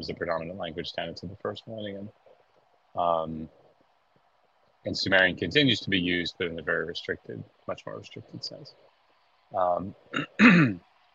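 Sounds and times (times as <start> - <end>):
speech: 0.0 - 2.2, 2.9 - 3.6, 4.8 - 8.9, 9.5 - 10.9
person clearing throat: 10.1 - 10.8.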